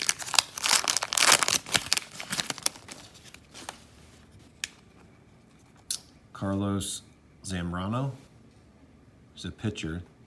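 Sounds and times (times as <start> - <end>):
wax pack of baseball cards tearing and crumpling as it is opened: 0.0 - 3.8
speech: 6.4 - 8.3, 9.4 - 10.1.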